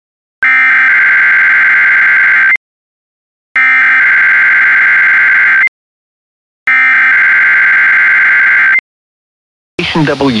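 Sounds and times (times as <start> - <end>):
weather radio warning alarm tone: 0.4 - 2.6, 3.6 - 5.7, 6.7 - 8.8
person speaking: 9.8 - 10.3.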